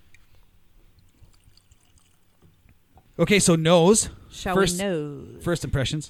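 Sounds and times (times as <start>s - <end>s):
Tennessee bourbon pouring into a glass: 0.8s - 3.0s
speech: 3.2s - 6.0s.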